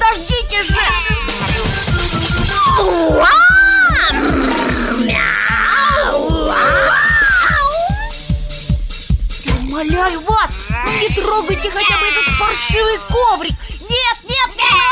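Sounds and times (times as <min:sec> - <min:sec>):
steady rhythmic thumping: 0:00.0 - 0:14.9
several cats meowing: 0:02.8 - 0:08.0, 0:10.4 - 0:13.2.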